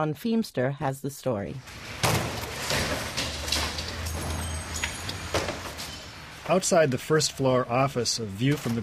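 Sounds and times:
speech: 0:00.0 - 0:02.3, 0:06.5 - 0:08.8
doors, cabinets and wallboard thrown into dumpsters from tenement windows: 0:01.6 - 0:06.6.

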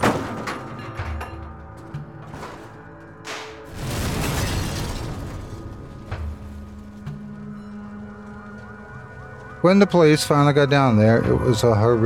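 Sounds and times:
heavy vehicle crashing through a wall onto rocks: 0:00.0 - 0:01.4, 0:02.2 - 0:07.0
breaking and shattering debris: 0:00.0 - 0:08.6
speech: 0:09.6 - 0:12.0.

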